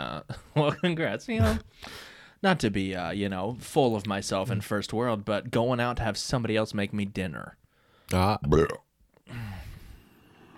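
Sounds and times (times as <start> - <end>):
speech: 0.6 - 9.4
croaky inhaled burp: 8.5 - 8.9.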